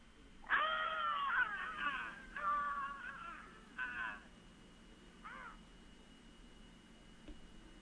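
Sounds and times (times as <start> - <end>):
several people screaming together in wailing bursts: 0.5 - 4.2.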